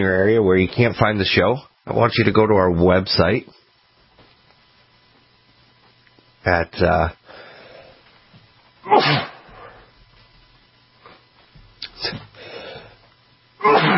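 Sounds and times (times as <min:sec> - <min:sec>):
speech: 0:00.0 - 0:03.6, 0:06.4 - 0:07.2, 0:08.8 - 0:09.3, 0:12.0 - 0:12.3
quiet breathing: 0:07.2 - 0:08.3, 0:09.5 - 0:10.0, 0:11.9 - 0:13.2
person sneezing: 0:08.8 - 0:09.8, 0:11.9 - 0:12.3, 0:13.6 - 0:13.9.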